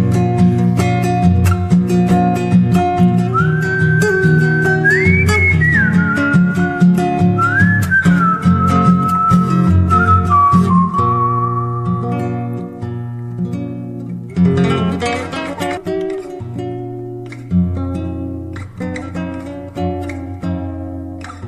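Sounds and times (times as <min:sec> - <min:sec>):
instrumental music: 0:00.0 - 0:21.4
person whistling a melody while riding off at a gallop: 0:03.2 - 0:12.5.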